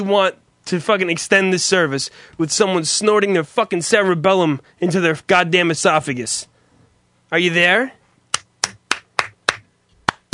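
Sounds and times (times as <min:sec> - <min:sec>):
speech: 0:00.0 - 0:06.5, 0:07.3 - 0:08.0
hands clapping: 0:08.3 - 0:10.3.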